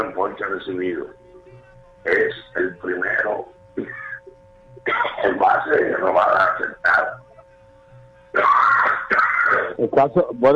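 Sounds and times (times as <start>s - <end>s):
speech: 0.0s - 1.2s, 2.0s - 4.0s, 4.8s - 7.2s, 8.3s - 10.5s
faint low hum: 0.0s - 10.5s
harsh raspy coughing: 3.8s - 4.2s, 4.8s - 5.4s, 8.4s - 9.8s
person clearing throat: 3.8s - 4.2s, 4.8s - 5.4s, 8.4s - 9.8s
laughter: 8.4s - 9.8s.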